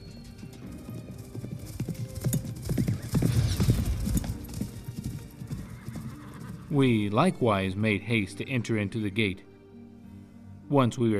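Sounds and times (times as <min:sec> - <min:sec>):
several horses galloping away at night: 0:00.0 - 0:07.0
speech: 0:06.7 - 0:09.5, 0:10.7 - 0:11.1.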